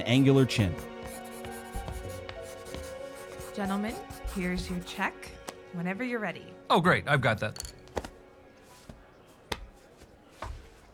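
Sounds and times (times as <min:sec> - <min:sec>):
speech: 0:00.0 - 0:00.9, 0:03.6 - 0:07.7
quick pencil strokes sketching on paper: 0:00.4 - 0:05.1.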